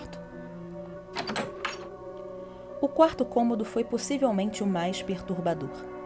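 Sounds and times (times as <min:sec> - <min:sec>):
door shutting with a clattering thud and softer knock: 0:01.1 - 0:02.0
speech: 0:02.8 - 0:06.0.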